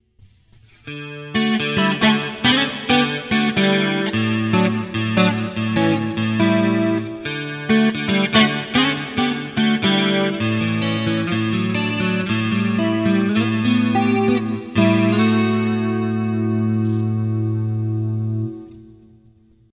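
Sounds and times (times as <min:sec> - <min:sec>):
2 x 2 Chorus effect on Boss GT-8: 0:00.0 - 0:19.7.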